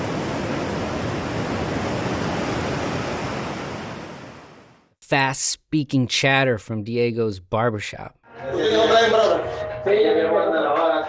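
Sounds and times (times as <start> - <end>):
ocean surf breaking on a beach: 0.0 - 4.8
speech: 5.1 - 11.0.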